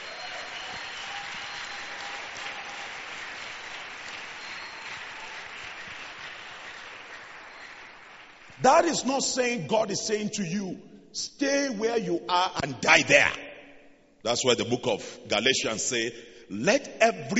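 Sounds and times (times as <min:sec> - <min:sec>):
congregation clapping hands in applause: 0:00.0 - 0:09.1
speech: 0:08.6 - 0:13.4, 0:14.2 - 0:17.3.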